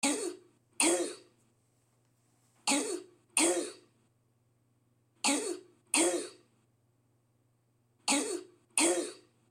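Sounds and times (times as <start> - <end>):
hoarse barking cough from laryngitis: 0.0 - 1.3, 2.7 - 3.9, 5.2 - 6.5, 8.0 - 9.4.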